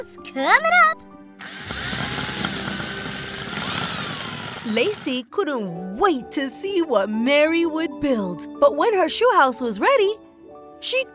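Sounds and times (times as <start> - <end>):
speech: 0.0 - 1.1, 4.7 - 10.2, 10.8 - 11.1
power drill whirring during construction work: 1.4 - 5.1.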